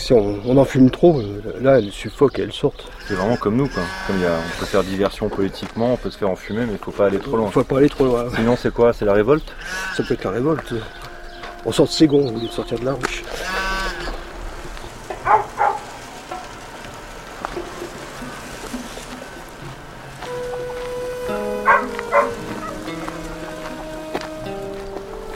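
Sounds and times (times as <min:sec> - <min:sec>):
speech: 0:00.0 - 0:11.0, 0:11.6 - 0:13.7
dog barking: 0:15.2 - 0:15.9, 0:21.6 - 0:22.8.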